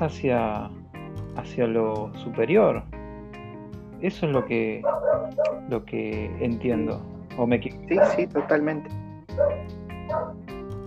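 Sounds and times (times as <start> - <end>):
speech: 0.0 - 0.8, 1.4 - 3.0, 4.0 - 10.4
dog barking: 4.3 - 5.7, 7.9 - 8.7, 9.3 - 10.4.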